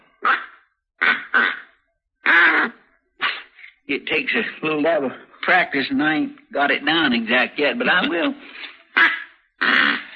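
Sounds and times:
duck call blown, raspy quacking honks: 0.2s - 3.6s, 8.9s - 10.1s
speech: 3.9s - 9.1s.

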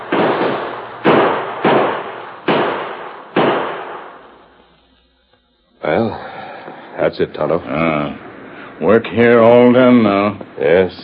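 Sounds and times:
gunshots fired by lawmen in a Western showdown: 0.0s - 4.6s
speech: 7.0s - 8.2s, 8.8s - 11.0s.

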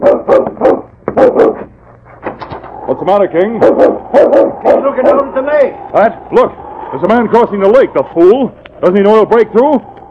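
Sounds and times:
dog barking: 0.0s - 1.7s, 3.4s - 5.2s
speech: 3.1s - 9.9s.

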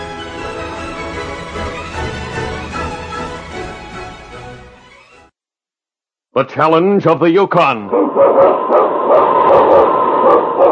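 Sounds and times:
speech: 6.4s - 8.9s
husky lead sled dog barking and yipping: 7.9s - 10.7s.

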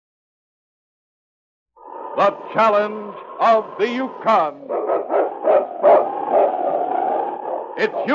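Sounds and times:
speech: 2.2s - 6.5s, 7.8s - 8.1s
husky sled lead dog barking into a wavering yowl: 4.4s - 8.1s.

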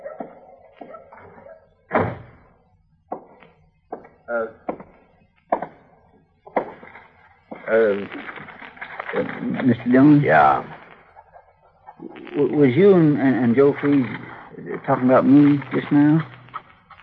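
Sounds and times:
voices murmuring: 0.0s - 2.1s, 3.1s - 17.0s
wooden door shutting with a thud: 1.9s - 2.4s
speech: 4.3s - 4.6s, 7.7s - 8.5s, 9.1s - 10.8s, 12.4s - 14.2s, 14.8s - 16.3s.

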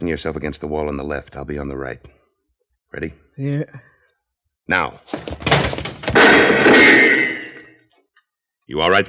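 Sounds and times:
speech: 0.0s - 2.2s, 2.9s - 3.9s, 4.7s - 5.4s, 8.7s - 9.0s
rattling splintering crash of a door being burst open: 5.1s - 7.6s
door being burst open: 5.1s - 7.7s.

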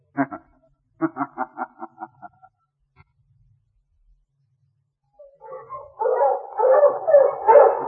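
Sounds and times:
sled dog barking: 5.4s - 7.8s.

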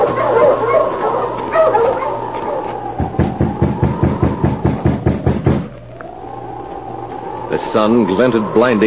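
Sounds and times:
team of sled dogs barking at an isolated spot surrounded by birch trees: 0.0s - 3.7s
low wind-like rushing: 2.8s - 8.8s
speech: 7.8s - 8.8s.

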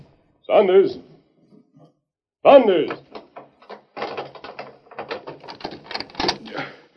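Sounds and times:
speech: 0.6s - 1.1s, 2.4s - 3.1s
door lock turning with metallic clicks and rattles: 2.9s - 6.6s
door clunking open: 2.9s - 6.7s.

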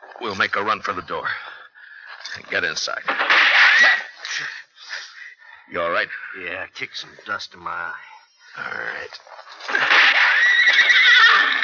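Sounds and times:
speech: 0.2s - 1.6s, 2.3s - 4.6s, 5.7s - 10.1s
horse neighing after being hit by gunfire: 9.7s - 11.6s.

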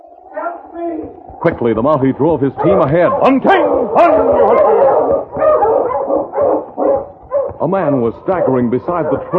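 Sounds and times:
speech: 0.7s - 4.9s, 7.6s - 9.3s
dog barking: 2.6s - 7.6s, 8.2s - 9.3s.

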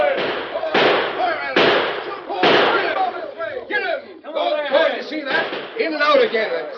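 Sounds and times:
gunshots in an old western shootout: 0.0s - 3.1s, 5.3s - 6.7s
voices shouting: 0.0s - 6.7s.

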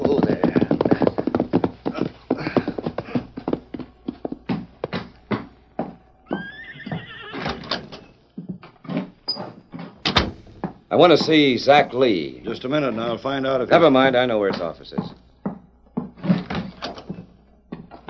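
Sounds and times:
horse hooves clopping at a walk: 0.0s - 18.0s
short horse whinny: 6.2s - 8.0s
speech: 11.0s - 15.2s.

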